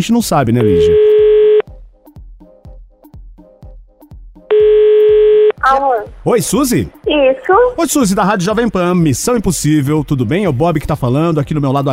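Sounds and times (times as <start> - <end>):
speech: 0.0 - 1.3, 5.7 - 11.9
telephone steady electronic dial tone: 0.6 - 1.6, 4.5 - 5.6.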